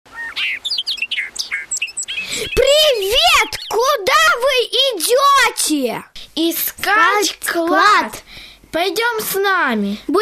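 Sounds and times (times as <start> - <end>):
birds singing with chirps and whistled trills: 0.1 - 4.4
speech: 2.4 - 10.1.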